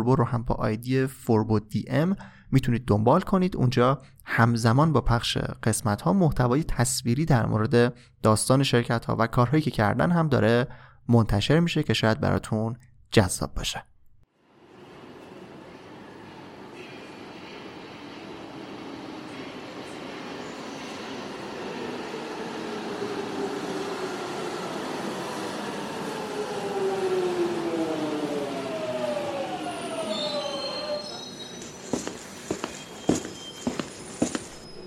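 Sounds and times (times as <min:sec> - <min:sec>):
speech: 0:00.0 - 0:13.9
moving train rumbling on the way to central Beijing: 0:14.6 - 0:34.8.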